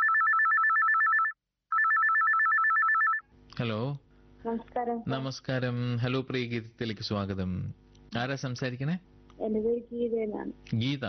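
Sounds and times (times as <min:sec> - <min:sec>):
telephone ringing with electronic trilling rings for an incoming call: 0:00.0 - 0:03.2
speech: 0:03.6 - 0:11.0.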